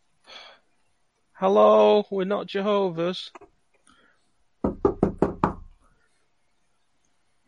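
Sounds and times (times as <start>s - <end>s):
speech: 1.4s - 3.5s
firm knocks on a wooden house door: 4.6s - 5.7s.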